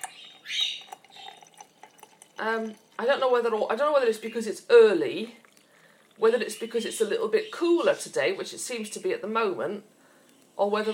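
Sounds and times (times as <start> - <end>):
light drips and clinks: 0.0 - 3.6, 5.1 - 7.0
coffee pouring into a cup: 0.0 - 7.2
speech: 2.4 - 5.4, 6.2 - 10.0, 10.6 - 10.9.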